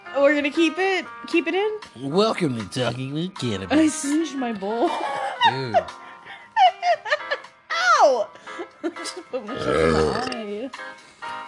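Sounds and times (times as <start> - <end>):
speech: 0.2 - 6.0, 8.1 - 11.1
laughter: 4.8 - 7.5
loud croaking burp: 9.5 - 10.4.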